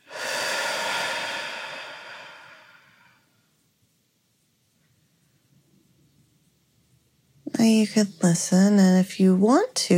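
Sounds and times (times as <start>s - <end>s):
deep breathing during a guided relaxation exercise: 0.0s - 3.4s
speech: 7.6s - 9.9s.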